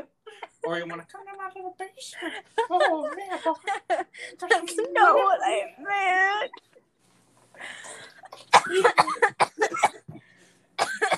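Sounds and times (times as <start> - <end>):
speech: 0.7 - 6.8, 7.6 - 10.0
harsh coughing fit: 8.3 - 11.1.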